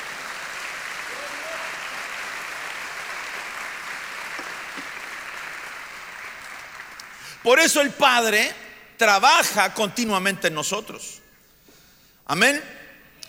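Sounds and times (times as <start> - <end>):
large group of people applauding during a sermon: 0.0 - 7.4
speech: 7.4 - 11.2, 12.3 - 12.8.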